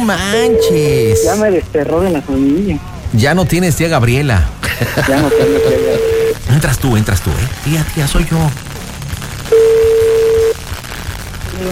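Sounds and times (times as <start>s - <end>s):
speech: 0.0s - 5.8s, 6.5s - 8.7s
ringback tone of an unanswered phone call: 0.3s - 1.4s, 5.2s - 6.4s, 9.5s - 10.6s
laughter: 4.6s - 6.3s.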